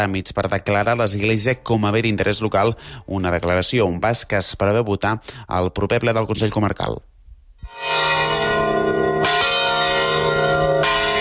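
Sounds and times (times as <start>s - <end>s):
speech: 0.0s - 7.1s
church bells pealing: 7.7s - 11.1s.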